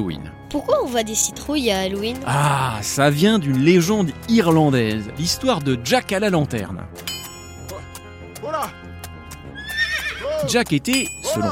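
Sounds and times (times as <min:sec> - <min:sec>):
speech: 0:00.0 - 0:07.2, 0:10.4 - 0:11.5
horse hooves clopping: 0:03.5 - 0:11.5
horse whinnying loudly: 0:09.5 - 0:10.5.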